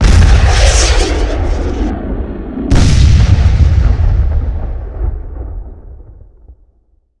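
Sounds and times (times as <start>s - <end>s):
C4 explosion: 0.0s - 6.7s.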